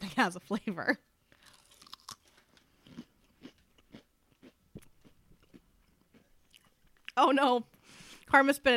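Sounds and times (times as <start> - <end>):
speech: 0.2 - 1.1, 7.2 - 7.7, 8.3 - 8.7
chewing crispy sea urchin flavored potato chips: 1.4 - 7.1.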